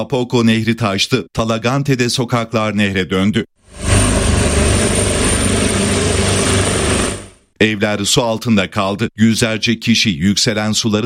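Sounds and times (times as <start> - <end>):
speech: 0.0 - 3.9, 7.6 - 11.0
helicopters taking off for a flood rescue in Chile: 3.6 - 7.5.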